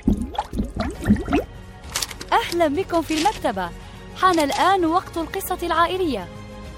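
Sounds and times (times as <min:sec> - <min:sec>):
bubbles blown underwater: 0:00.0 - 0:01.5
speech: 0:02.5 - 0:06.4.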